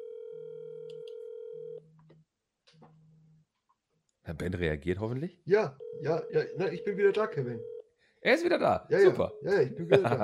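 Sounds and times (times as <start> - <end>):
telephone dial tone on speakerphone: 0.0 - 1.8, 5.8 - 7.8
speech: 4.3 - 10.2
laughter: 9.0 - 10.2.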